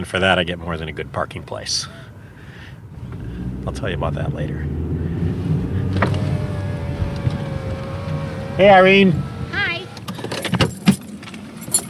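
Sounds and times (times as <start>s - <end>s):
speech: 0.0s - 2.1s, 3.6s - 4.8s, 8.6s - 9.3s
low rumble of a car engine: 0.8s - 11.7s
keys jangling in a parked car: 10.2s - 11.8s.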